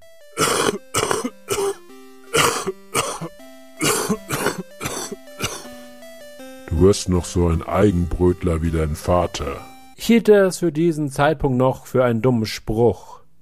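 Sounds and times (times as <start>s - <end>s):
loud hacking coughing: 0.4s - 5.7s
speech: 6.8s - 13.1s.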